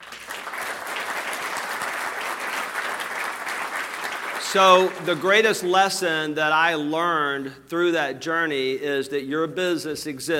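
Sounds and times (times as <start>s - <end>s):
audience applause: 0.0s - 5.7s
speech: 4.5s - 10.3s.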